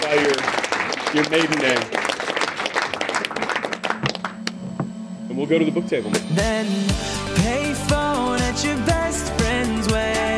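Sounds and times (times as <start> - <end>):
audience applause in a room: 0.0 - 4.6
speech: 0.1 - 2.1, 5.4 - 10.3.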